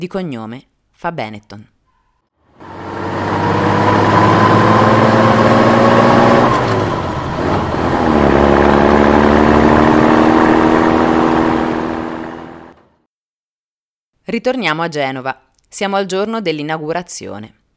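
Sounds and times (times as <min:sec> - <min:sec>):
speech: 0:00.0 - 0:01.8, 0:14.3 - 0:17.6
Dovunque truck engine droning in Libya: 0:02.6 - 0:12.9.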